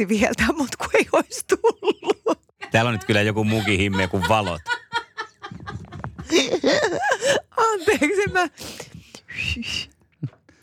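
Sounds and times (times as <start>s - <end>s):
speech: 0.0s - 2.0s, 2.7s - 4.8s, 7.8s - 8.9s, 9.6s - 9.9s
laughter: 1.6s - 8.5s
breathy failed whistling into a microphone: 9.3s - 9.9s.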